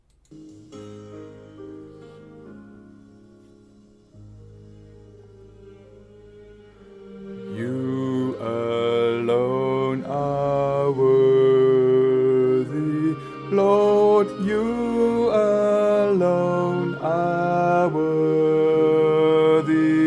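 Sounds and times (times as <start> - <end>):
soprano voice singing: 7.1 - 20.0.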